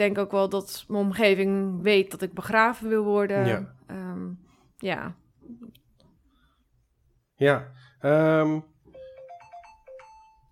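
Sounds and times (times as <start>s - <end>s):
speech: 0.0s - 5.2s, 7.4s - 8.7s
phone message notification tone: 8.9s - 10.5s.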